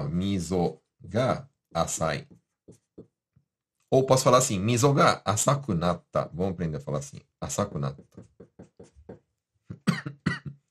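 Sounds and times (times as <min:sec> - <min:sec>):
speech: 0:00.0 - 0:02.8, 0:03.9 - 0:08.3
person coughing: 0:09.7 - 0:10.6.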